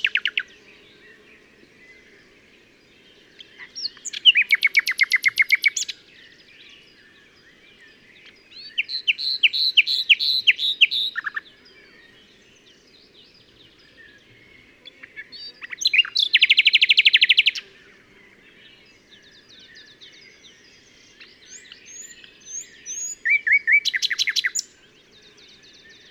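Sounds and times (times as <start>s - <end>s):
Common nightingale Luscinia megarhynchos singing: 0.0s - 2.4s, 3.1s - 17.8s, 18.4s - 26.1s.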